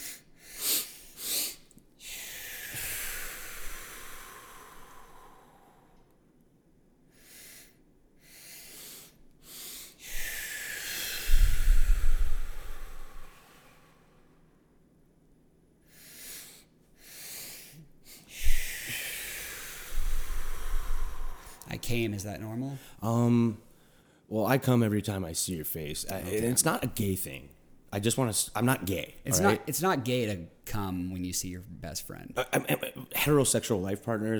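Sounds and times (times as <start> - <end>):
person doing a breathing exercise with double inhales and slow hissing exhales: 0.0 - 6.2, 7.1 - 14.6, 15.8 - 21.8, 29.2 - 29.6
speech: 21.9 - 23.6, 24.3 - 34.3.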